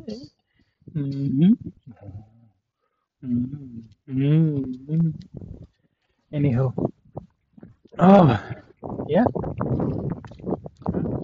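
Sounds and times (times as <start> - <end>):
speech: 0.0 - 0.4, 1.0 - 2.3, 3.2 - 5.7, 6.3 - 7.0, 8.0 - 10.5
steady outdoor wind on a cool morning buffeting microphone: 4.6 - 5.7, 6.4 - 11.2.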